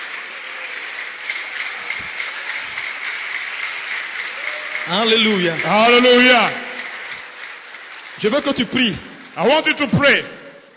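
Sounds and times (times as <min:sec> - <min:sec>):
congregation applauding during a church service: 0:00.0 - 0:10.7
speech: 0:04.9 - 0:06.6, 0:08.2 - 0:10.4.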